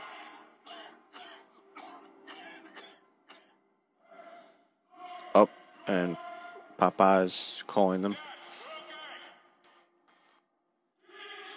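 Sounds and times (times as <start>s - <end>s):
person coughing harshly: 0.7s - 3.5s
speech: 5.4s - 8.3s.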